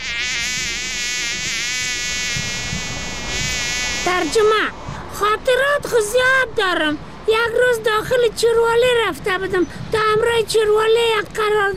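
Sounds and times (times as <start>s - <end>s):
housefly buzzing: 0.0s - 4.6s
speech: 4.1s - 11.7s.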